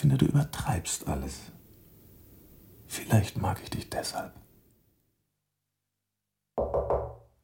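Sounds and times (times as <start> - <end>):
speech: 0.1 - 1.6, 3.1 - 4.5
knocking on a wooden door: 6.6 - 7.3.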